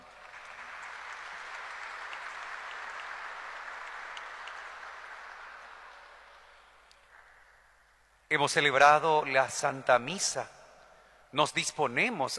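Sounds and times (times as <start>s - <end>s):
large crowd applauding: 0.0s - 7.2s
speech: 8.3s - 10.6s, 11.3s - 12.3s.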